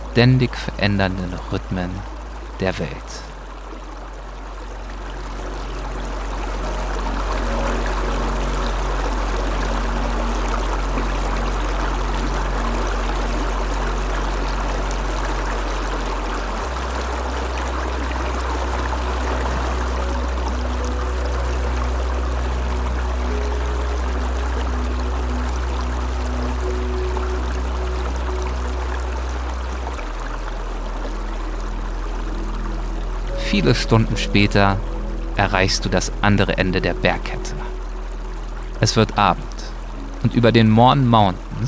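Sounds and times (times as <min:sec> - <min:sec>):
flowing stream water: 0:00.0 - 0:41.6
speech: 0:00.2 - 0:03.3, 0:33.6 - 0:37.6, 0:38.8 - 0:39.4, 0:40.2 - 0:41.6.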